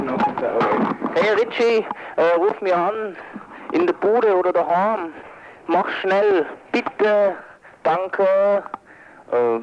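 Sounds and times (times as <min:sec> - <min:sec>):
office answering machine beep: 0:00.1 - 0:00.6
speech: 0:00.4 - 0:08.8, 0:09.3 - 0:09.6.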